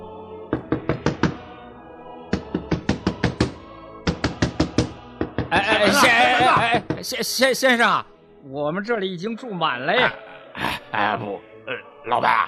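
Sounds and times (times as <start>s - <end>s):
shepherds knocking on the wooden door of an inn: 0.5s - 1.4s, 2.3s - 5.6s, 6.4s - 7.2s
laughter: 5.5s - 6.9s
speech: 7.0s - 10.2s, 11.0s - 12.4s.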